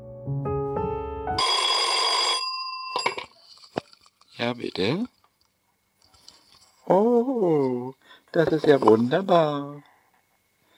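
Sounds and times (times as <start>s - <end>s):
telephone ringing with electronic tones: 1.4s - 3.5s
speech: 4.4s - 5.2s, 6.9s - 9.9s.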